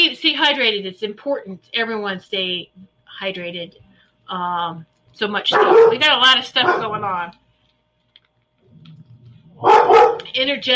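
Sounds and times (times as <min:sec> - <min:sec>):
speech: 0:00.1 - 0:07.4, 0:09.6 - 0:10.7
dog barking: 0:05.5 - 0:07.2, 0:09.6 - 0:10.3
dog giving a low rumbling grumble: 0:05.6 - 0:07.3.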